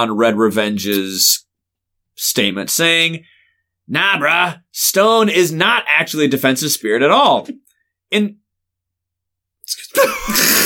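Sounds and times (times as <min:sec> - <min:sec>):
speech: 0:00.0 - 0:01.5, 0:02.2 - 0:08.4, 0:09.7 - 0:10.6
person sneezing: 0:10.0 - 0:10.6.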